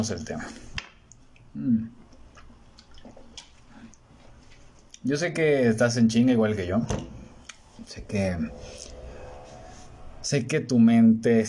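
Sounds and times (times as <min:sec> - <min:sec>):
speech: 0:00.0 - 0:00.7, 0:01.5 - 0:02.0, 0:05.0 - 0:07.2, 0:07.8 - 0:08.8, 0:10.2 - 0:11.4
sips and swallows of water: 0:02.0 - 0:05.0.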